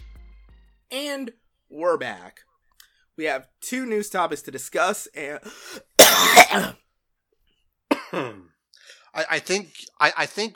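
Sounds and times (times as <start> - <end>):
speech: 0.9 - 2.5, 3.2 - 6.8, 8.1 - 8.5, 9.2 - 10.5
person coughing: 6.0 - 6.8, 7.9 - 8.5.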